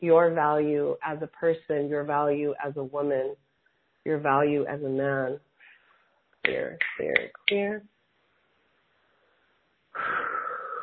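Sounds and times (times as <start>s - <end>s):
speech: 0.0s - 3.4s, 4.0s - 5.5s, 6.4s - 7.9s, 10.0s - 10.4s
deep breath: 5.6s - 6.2s, 9.0s - 10.8s.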